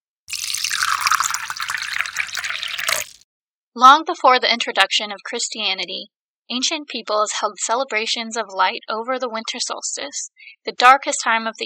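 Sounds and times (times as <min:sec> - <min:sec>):
tea pouring into a cup: 0:00.3 - 0:03.2
speech: 0:03.8 - 0:11.6.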